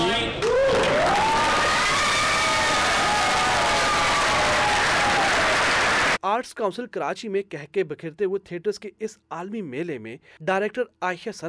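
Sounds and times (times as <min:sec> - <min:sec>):
audience applauding at the end of a stage play: 0:00.4 - 0:06.2
scattered cheering from a theatre audience: 0:00.4 - 0:06.2
speech: 0:06.4 - 0:11.4.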